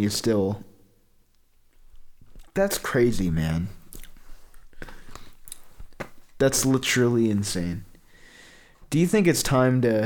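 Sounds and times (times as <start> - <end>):
speech: 0.0 - 0.7, 2.6 - 3.8, 6.4 - 7.9, 8.9 - 10.0
low hiss: 0.0 - 10.0
wet chewing with mouth open: 3.9 - 4.8.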